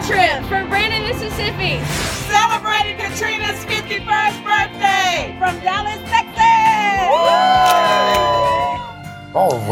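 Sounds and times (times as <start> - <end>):
speech: 0.1 - 7.8, 9.4 - 9.7
large live studio crowd cheering and whooping: 6.9 - 9.7
dense wall of applause-like noise: 7.4 - 8.9.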